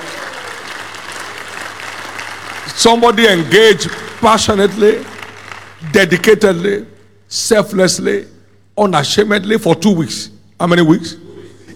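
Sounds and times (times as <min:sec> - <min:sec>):
church congregation applauding a clap offering: 0:00.0 - 0:07.1
speech: 0:02.8 - 0:05.1, 0:05.8 - 0:11.2.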